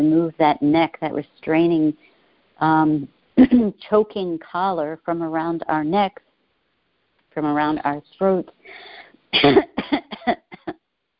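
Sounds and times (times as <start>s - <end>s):
speech: 0.0s - 6.3s, 7.4s - 10.5s
wet chesty coughing to clear congestion: 9.4s - 10.8s.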